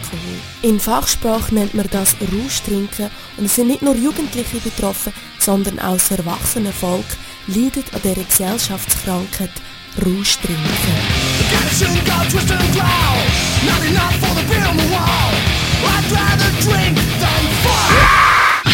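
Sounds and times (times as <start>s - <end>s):
speech: 0.1s - 18.1s
person yelling and screaming: 17.6s - 18.7s.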